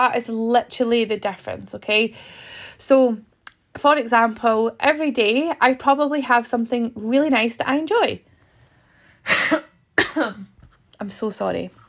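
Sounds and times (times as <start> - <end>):
speech: 0.0 - 8.3, 9.2 - 11.8
coughing: 9.2 - 10.6.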